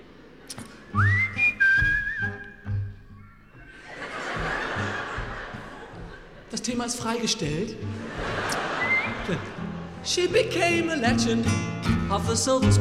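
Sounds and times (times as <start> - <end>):
audience crowd noise: 0.0 - 11.5
sliding whistle: 1.0 - 2.6
audience laughing: 3.6 - 10.9
speech: 6.8 - 8.6, 9.3 - 12.7.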